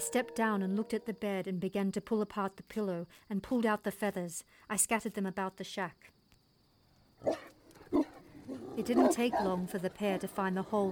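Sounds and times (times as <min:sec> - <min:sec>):
speech: 0:00.1 - 0:06.2, 0:07.2 - 0:07.6, 0:08.5 - 0:10.8
female dingo growling: 0:07.2 - 0:10.8.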